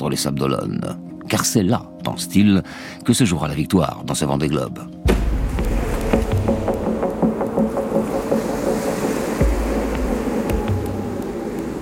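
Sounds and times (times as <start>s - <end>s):
speech: 0.0s - 5.3s
racing sailboat hull slamming on water: 5.0s - 6.5s
heavy ocean waves several metres high in the Indian Ocean with easing wind: 5.1s - 11.8s.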